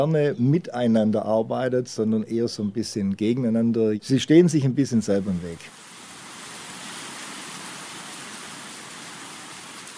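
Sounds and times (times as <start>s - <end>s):
speech: 0.0s - 5.8s
heavy torrential rain pouring in front of a Byzantine church in the Mani Greece: 5.7s - 9.9s.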